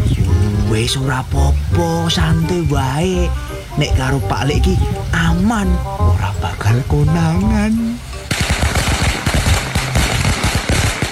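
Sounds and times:
speech: 0.8s - 8.4s
long string of firecrackers popping in the daytime: 8.3s - 11.1s.

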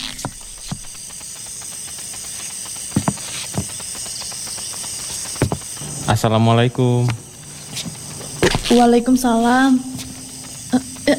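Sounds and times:
steady high-pitched hiss: 0.0s - 11.1s
soft footsteps on a hard floor: 2.9s - 3.8s, 5.1s - 5.8s, 7.0s - 11.1s
speech: 6.1s - 7.2s, 8.7s - 9.9s.

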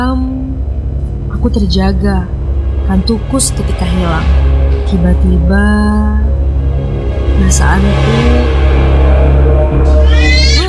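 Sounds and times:
speech: 0.0s - 0.3s, 1.4s - 6.4s, 7.4s - 8.7s
steady low drone: 0.0s - 10.5s
cat meowing: 9.9s - 10.6s.

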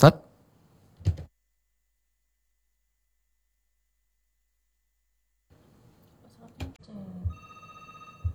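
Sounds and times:
speech: 0.0s - 0.2s
telephone line noise and clicks: 6.9s - 8.3s
steady electronic telephone ringing tone: 7.1s - 8.3s.

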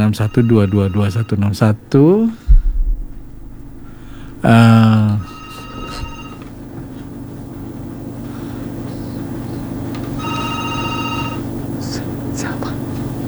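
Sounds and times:
telephone ringing for an incoming call to a radio call-in program: 0.0s - 11.8s
steady low hum: 0.0s - 13.2s
speech: 0.1s - 2.5s, 4.4s - 5.3s.

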